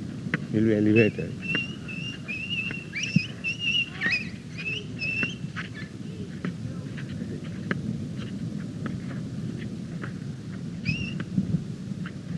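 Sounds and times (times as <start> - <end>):
steady low rumble: 0.0 - 12.3
speech: 0.5 - 1.5
bird whistling and chirping: 0.8 - 5.9, 10.8 - 11.2.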